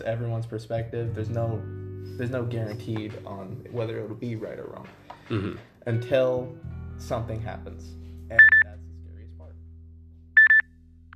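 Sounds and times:
speech: 0:00.0 - 0:08.6
phone ringtone chirping: 0:10.4 - 0:10.6.

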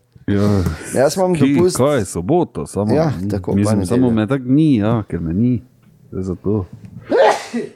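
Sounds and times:
speech: 0:00.3 - 0:07.7
single sharp sneeze: 0:07.0 - 0:07.7.

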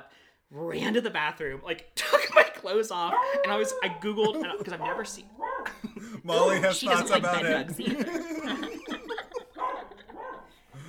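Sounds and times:
speech: 0:00.5 - 0:08.6
laughter: 0:02.0 - 0:10.8
dog barking and yipping: 0:03.1 - 0:05.9, 0:09.3 - 0:10.6.

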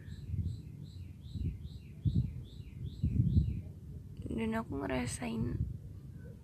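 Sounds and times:
birds chirping outdoors in the morning: 0:00.0 - 0:03.8
low outdoor ambience rumble: 0:00.0 - 0:06.4
speech: 0:04.4 - 0:05.7.

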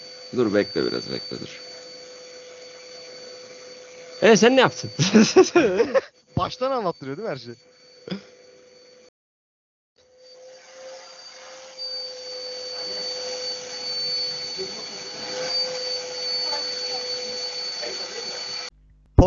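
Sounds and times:
vacuum cleaner droning in another room: 0:00.0 - 0:09.1, 0:10.0 - 0:18.7
speech: 0:00.3 - 0:01.7, 0:04.2 - 0:08.3
people laughing: 0:05.0 - 0:06.1.

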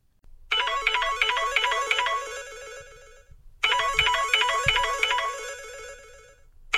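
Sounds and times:
phone ringing with a bright repeating electronic ringtone: 0:00.5 - 0:06.7.

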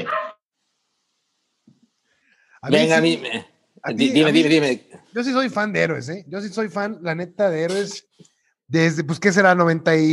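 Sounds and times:
dog barking loudly and sharply: 0:00.0 - 0:00.4
speech: 0:02.6 - 0:10.1.

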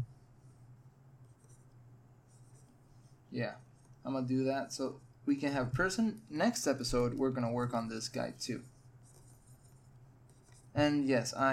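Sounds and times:
coloring pen drawing on paper: 0:01.2 - 0:04.0, 0:08.5 - 0:11.0
speech: 0:03.3 - 0:08.8, 0:10.8 - 0:11.5.

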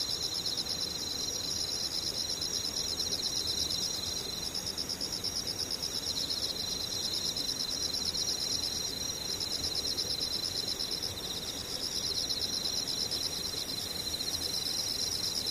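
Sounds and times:
insects chirring in dense high trilling bands: 0:00.0 - 0:15.5.

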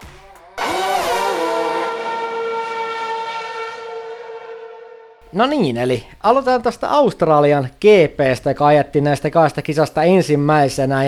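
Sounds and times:
racing car engine roaring: 0:00.0 - 0:05.3
speech: 0:05.3 - 0:11.0.

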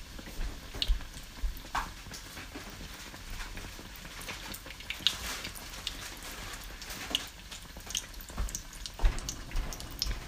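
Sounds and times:
Oreos and funnel sticks frying in hot oil: 0:00.0 - 0:10.2.

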